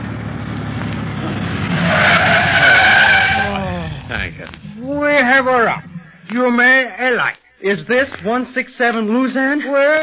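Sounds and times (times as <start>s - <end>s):
taxi engine roaring: 0.0s - 6.4s
taxi tires screeching in a long skid: 0.9s - 4.8s
speech: 7.2s - 10.0s.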